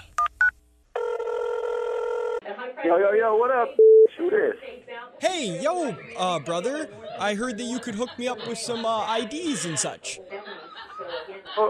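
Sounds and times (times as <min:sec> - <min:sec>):
telephone electronic ring tone: 0:01.0 - 0:02.4
speech: 0:02.8 - 0:10.4, 0:11.4 - 0:11.6
telephone keypad beeps: 0:03.8 - 0:04.1
laughter: 0:05.2 - 0:11.6.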